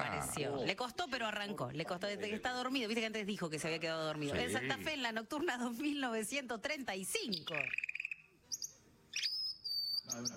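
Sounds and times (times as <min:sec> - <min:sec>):
speech: 0:00.3 - 0:07.9, 0:10.1 - 0:10.3
bird chirping: 0:07.2 - 0:10.3.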